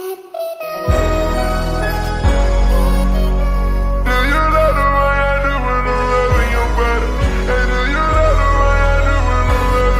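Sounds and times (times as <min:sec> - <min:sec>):
slowed song with reverb: 0:00.0 - 0:09.9.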